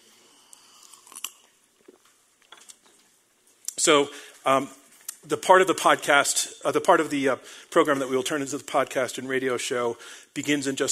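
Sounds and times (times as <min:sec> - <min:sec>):
person sipping water: 0:00.1 - 0:02.9
speech: 0:03.8 - 0:10.8.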